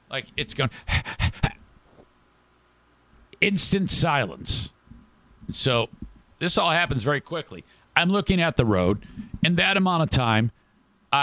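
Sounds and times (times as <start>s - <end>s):
speech: 0.1s - 1.1s, 3.4s - 4.8s, 5.5s - 11.2s
person imitating a dog breathing heavily: 0.8s - 1.6s.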